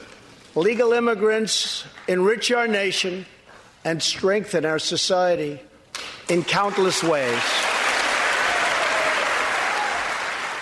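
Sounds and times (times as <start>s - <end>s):
speech: 0.6s - 5.7s, 6.3s - 7.6s
large audience of Republicans applauding: 6.5s - 10.6s
audience cheering: 6.6s - 10.6s.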